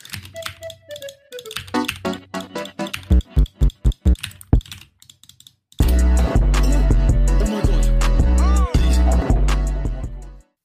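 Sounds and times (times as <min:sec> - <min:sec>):
keyboard shortcuts typed on a computer keyboard: 0:00.0 - 0:05.8
loud dense music with a steady thumping beat: 0:02.9 - 0:04.7, 0:05.8 - 0:10.2.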